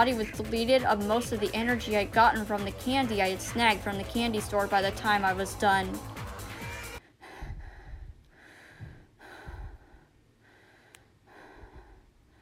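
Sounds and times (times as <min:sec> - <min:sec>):
speech: 0:00.0 - 0:06.1
heavy ragged panting after physical exertion: 0:04.7 - 0:12.3.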